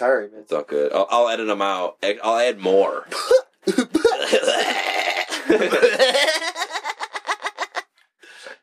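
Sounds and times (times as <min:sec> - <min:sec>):
speech: 0:00.0 - 0:04.8, 0:05.5 - 0:06.6
loud laugh-like coughing fit: 0:03.1 - 0:06.2.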